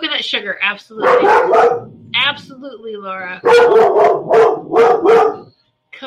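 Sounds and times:
speech: 0:00.2 - 0:06.0
dog barking: 0:01.0 - 0:02.4, 0:03.4 - 0:05.5.

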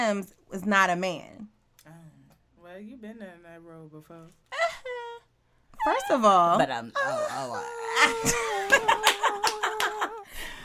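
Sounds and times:
speech: 0:00.0 - 0:01.5, 0:02.7 - 0:05.0, 0:05.8 - 0:10.6
person imitating a cat's meow: 0:07.0 - 0:10.2
laughter and giggling: 0:07.8 - 0:10.6.

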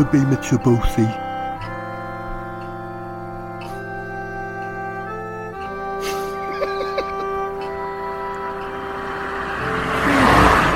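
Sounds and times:
speech: 0:00.0 - 0:01.2
laughter: 0:06.0 - 0:07.6
car driving past on a road: 0:07.6 - 0:10.7.

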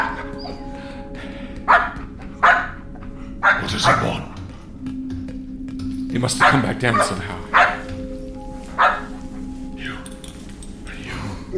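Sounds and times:
dog barking: 0:01.7 - 0:02.8, 0:03.4 - 0:04.2, 0:06.4 - 0:07.9, 0:08.7 - 0:09.2
speech: 0:03.7 - 0:04.3, 0:06.2 - 0:07.5.

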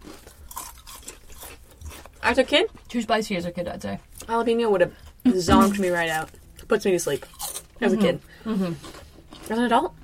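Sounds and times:
chewing thin potato chips: 0:00.0 - 0:03.3, 0:05.0 - 0:10.0
speech: 0:02.3 - 0:08.9, 0:09.5 - 0:10.0.

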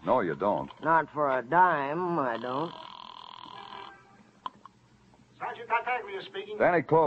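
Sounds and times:
speech: 0:00.1 - 0:02.9, 0:05.4 - 0:07.0
telephone ringing with a buzzy tone: 0:02.2 - 0:04.1.

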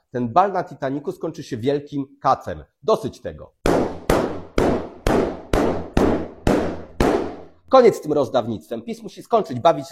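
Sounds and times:
speech: 0:00.1 - 0:03.6, 0:07.7 - 0:09.9
balloons popping: 0:03.6 - 0:07.6.

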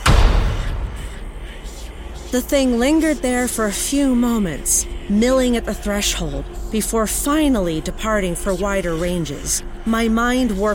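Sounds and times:
heavy slam shutting closed: 0:00.0 - 0:02.3
speech: 0:02.3 - 0:10.7.

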